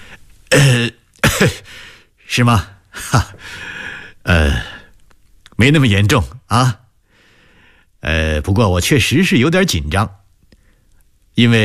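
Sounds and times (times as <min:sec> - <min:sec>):
person coughing awkwardly and clearing throat: 0:00.5 - 0:01.7
speech: 0:01.4 - 0:03.7, 0:05.6 - 0:06.8, 0:08.0 - 0:10.2, 0:11.4 - 0:11.6.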